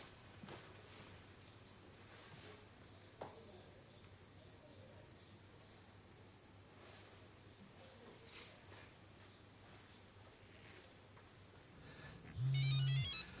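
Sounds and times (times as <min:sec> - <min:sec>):
low hum: 0:00.0 - 0:13.3
mobile phone ringing with a loud electronic ringtone inside a car: 0:12.4 - 0:13.3.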